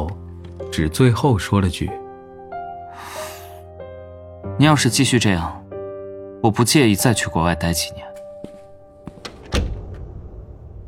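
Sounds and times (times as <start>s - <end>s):
speech: 0.8s - 2.0s, 4.6s - 5.6s, 6.4s - 8.1s
door latch clicks in a house: 8.2s - 10.5s
door closing with a solid thump in a house: 8.2s - 10.8s.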